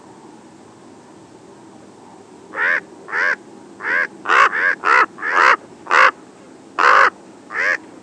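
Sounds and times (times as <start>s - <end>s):
common raven giving hoarse croaking caws in Arizona: 2.5s - 6.2s, 6.8s - 7.8s.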